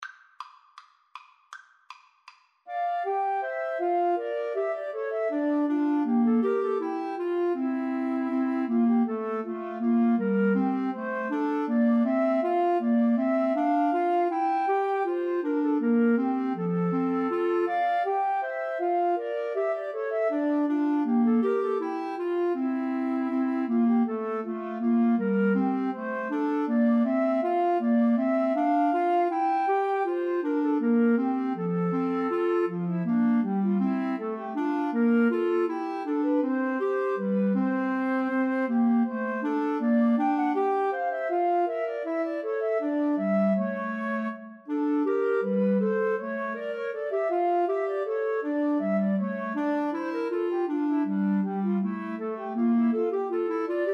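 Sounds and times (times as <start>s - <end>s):
two flutes and clarinet playing a bourree: 2.7s - 53.9s.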